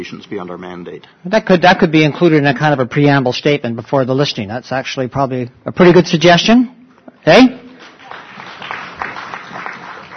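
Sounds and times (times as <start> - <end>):
speech: 0.0 - 7.6
meeting audience applause: 7.8 - 10.1.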